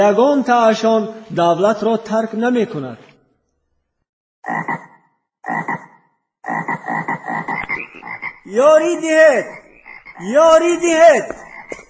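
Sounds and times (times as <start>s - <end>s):
speech: 0.0s - 3.1s, 4.4s - 4.8s, 6.5s - 9.6s, 10.2s - 11.8s
large frogs croaking: 4.4s - 11.8s.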